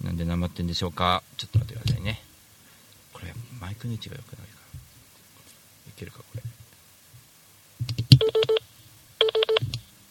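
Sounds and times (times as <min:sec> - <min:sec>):
speech: 0:00.2 - 0:02.2, 0:03.6 - 0:04.5
telephone keypad tones as a phone is dialed: 0:08.2 - 0:08.6, 0:09.2 - 0:09.7.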